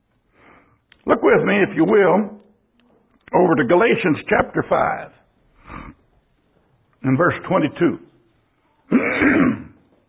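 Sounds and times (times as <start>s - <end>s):
speech: 1.2s - 2.4s, 3.3s - 5.2s, 7.0s - 8.1s, 8.9s - 9.6s
man clearing his throat: 8.9s - 9.8s.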